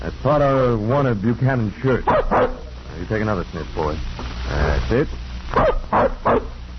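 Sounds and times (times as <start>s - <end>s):
speech: 0.0s - 6.6s
young tracking-hound puppy barking in short high yips: 2.1s - 2.7s, 5.5s - 6.6s.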